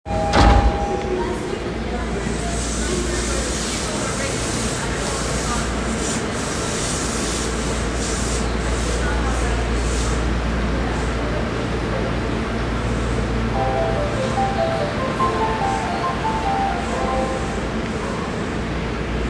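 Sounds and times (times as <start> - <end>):
subway train sounds at a Toei Oedo Line station: 0.1 - 19.2.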